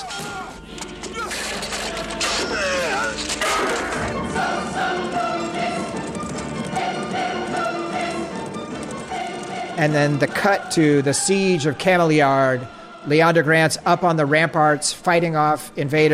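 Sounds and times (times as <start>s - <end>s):
orchestral and choral film music: 0.0s - 16.1s
hoofbeats of horses ridden at speed by knights: 0.7s - 10.8s
speech: 9.8s - 16.1s.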